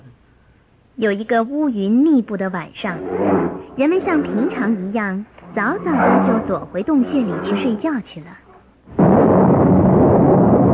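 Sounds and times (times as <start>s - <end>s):
speech: 1.0s - 9.0s
thunder accompanying lightning: 8.9s - 10.7s.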